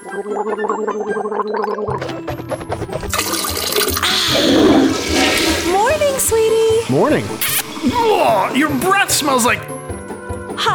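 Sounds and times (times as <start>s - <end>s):
speech: 0.2s - 2.8s, 7.0s - 9.8s
running water at a bathroom sink: 3.1s - 9.7s
person gargling mouthwash at a bathroom sink: 3.6s - 5.8s.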